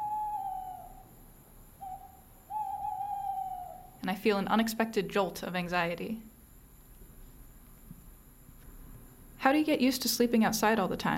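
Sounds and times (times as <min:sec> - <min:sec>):
great horned owl hooting in a forest at night: 0:00.0 - 0:01.2, 0:01.8 - 0:04.0
speech: 0:04.0 - 0:06.3, 0:09.4 - 0:11.1.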